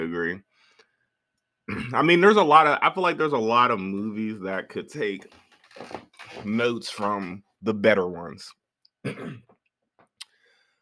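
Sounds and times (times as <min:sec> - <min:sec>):
speech: 0:00.0 - 0:00.5, 0:01.7 - 0:09.5
harsh cough or throat-clearing: 0:01.7 - 0:02.0, 0:09.1 - 0:09.5.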